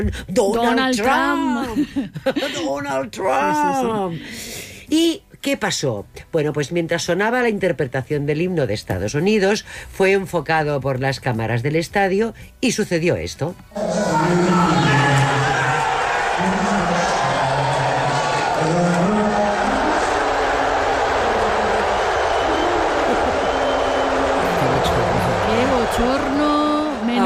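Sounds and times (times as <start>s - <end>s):
speech: 0.0s - 15.0s
huge stadium crowd booing: 13.8s - 27.2s.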